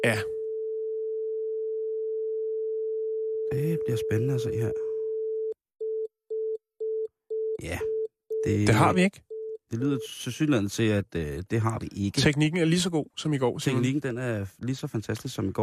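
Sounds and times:
speech: 0.0s - 0.3s, 3.5s - 4.8s, 7.6s - 15.6s
telephone busy signal of short beeps: 0.5s - 10.1s.

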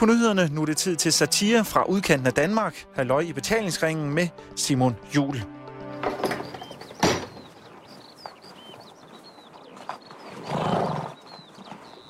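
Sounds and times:
speech: 0.0s - 6.2s
horse hooves clip-clopping: 5.9s - 12.0s
small birds chirping: 5.9s - 12.0s
horse whinnying: 9.6s - 11.5s.

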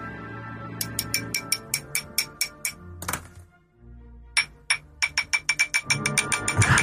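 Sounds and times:
teaspoon tapping on a drinking glass: 0.8s - 2.8s, 4.4s - 6.8s.

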